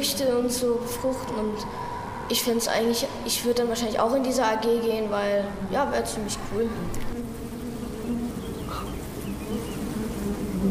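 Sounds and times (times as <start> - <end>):
speech: 0.0 - 7.2
bees buzzing: 5.6 - 10.6.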